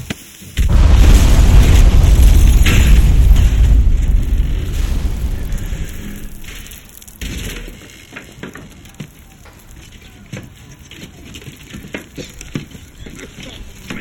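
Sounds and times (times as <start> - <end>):
pipe bomb explosion in a video game: 0.6 - 7.2.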